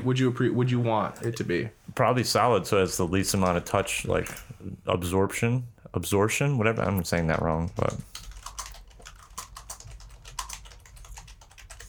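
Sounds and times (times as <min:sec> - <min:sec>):
speech: 0:00.0 - 0:08.3
rapid typing on a computer keyboard: 0:07.3 - 0:11.8.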